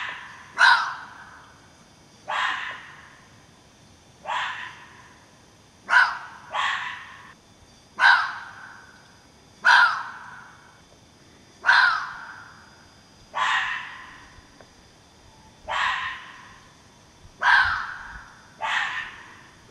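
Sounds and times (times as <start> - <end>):
fox giving rasping barks: 0.0 - 1.2, 2.3 - 3.2, 4.2 - 5.0, 5.8 - 7.3, 8.0 - 8.8, 9.6 - 10.5, 11.6 - 12.4, 13.3 - 14.3, 15.6 - 16.6, 17.4 - 19.7.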